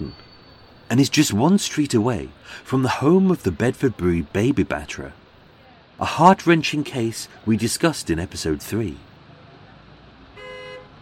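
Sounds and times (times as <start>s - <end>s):
rumble of cars in a traffic jam on a busy London road: 0.0s - 11.0s
speech: 0.9s - 5.2s, 6.0s - 9.1s
car horn toot in a traffic jam: 10.4s - 11.0s.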